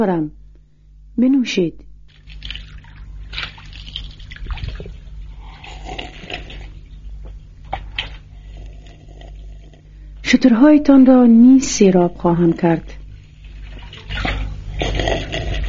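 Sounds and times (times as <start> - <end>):
speech: 0.0 - 0.4, 1.2 - 2.4, 10.3 - 13.0
low hum: 0.0 - 15.6
water splashing in a well: 2.1 - 6.8, 13.3 - 14.6
water sloshing and trickling as it is drawn from a well: 2.1 - 8.3, 13.1 - 14.6.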